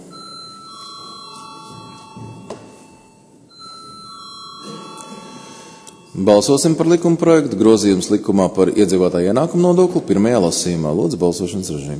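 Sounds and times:
electric bell ringing in a parliament chamber before a vote: 0.0s - 6.7s
speech: 6.2s - 11.9s.

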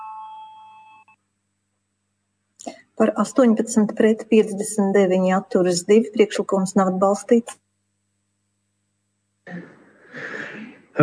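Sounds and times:
electronic voting bell ringing in a parliament chamber: 0.0s - 1.2s
speech: 3.0s - 7.6s.

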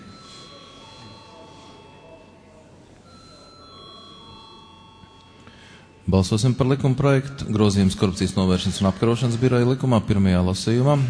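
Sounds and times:
electric bell ringing in the Latvian parliament chamber before a vote: 0.0s - 9.0s
low murmur in the Latvian parliament chamber: 0.0s - 11.0s
speech: 6.1s - 11.0s.

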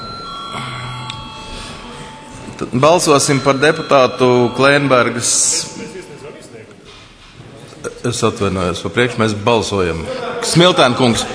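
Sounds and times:
bell rung to call a vote in a parliamentary session: 0.0s - 6.7s
speech: 2.6s - 5.8s, 8.0s - 11.3s.

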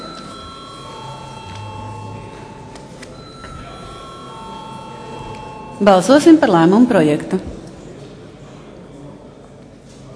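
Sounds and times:
bell rung to call members in a parliament session: 0.0s - 7.1s
speech: 5.8s - 7.6s.

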